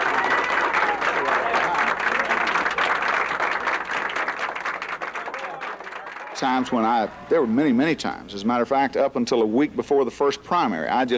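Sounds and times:
large crowd applauding a governor's arrival: 0.0 - 7.8
speech: 6.4 - 11.1.

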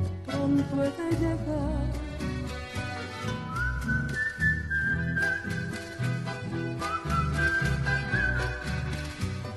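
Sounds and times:
steady rhythmic instrumental accompaniment: 0.0 - 9.5
speech: 0.5 - 2.1
soft whistling melody in a Spanish-language song: 3.5 - 6.2, 6.8 - 9.0.

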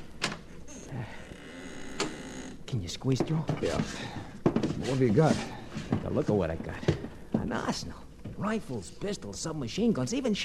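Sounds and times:
basement door opening with scrape, squeaks and creak: 0.0 - 4.8
speech: 2.7 - 10.4.

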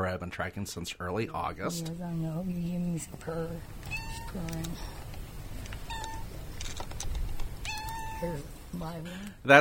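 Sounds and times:
speech: 0.1 - 5.0, 8.2 - 9.5
steady hiss: 0.7 - 9.5
several cats meowing: 3.7 - 4.9, 5.7 - 6.6, 7.4 - 8.6.

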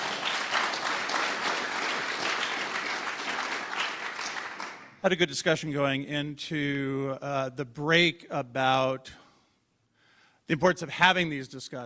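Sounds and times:
live studio audience applauding: 0.0 - 5.0
speech: 5.0 - 9.2, 10.5 - 11.8.

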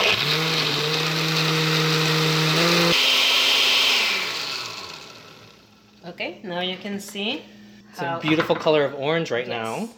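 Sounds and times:
kitchen blender blending mole with salt and meat broth: 0.0 - 6.1
speech: 6.5 - 9.9.

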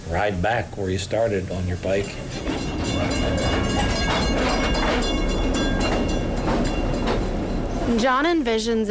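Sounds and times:
speech: 0.1 - 5.4, 7.9 - 8.8
train rolling along railroad tracks: 1.9 - 8.8
squealing metallic tones overhead: 2.0 - 8.1
faint rhythmic clacks of train wheels: 2.0 - 8.6.

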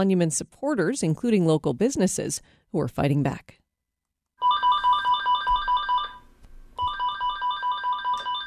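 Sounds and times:
speech: 0.0 - 3.6
electronic office telephone ringing in warbling bursts: 4.4 - 8.4.

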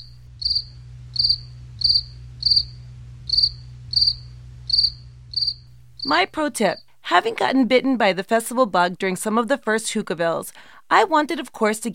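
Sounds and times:
cricket chirping: 0.0 - 6.2
low constant hum: 0.0 - 9.7
speech: 6.0 - 11.9.

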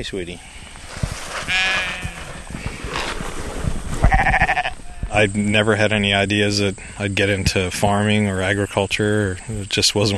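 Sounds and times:
speech: 0.0 - 0.7, 5.2 - 10.1
sheep bleating: 1.4 - 2.4, 4.0 - 5.2.

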